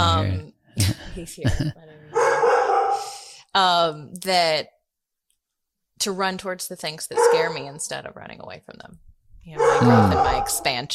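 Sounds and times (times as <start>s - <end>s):
speech: 0.2s - 2.0s, 3.6s - 4.8s, 6.0s - 10.9s
dog barking: 2.1s - 3.1s, 7.2s - 7.6s, 9.6s - 10.7s
laughter: 9.8s - 10.2s
murmur of a voice: 9.8s - 10.4s.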